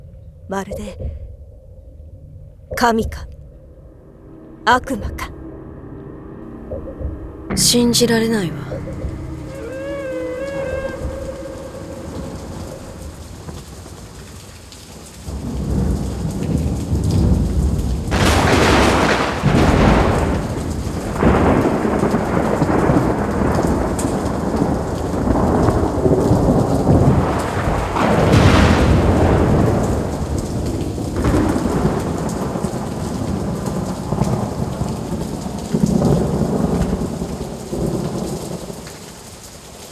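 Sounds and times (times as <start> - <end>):
deep thunder rumbling: 0.0 - 39.8
speech: 0.5 - 1.2, 2.7 - 3.4, 4.6 - 5.4, 6.7 - 9.2
faint tonal whines: 3.3 - 13.6
heavy steady rain: 3.9 - 39.8.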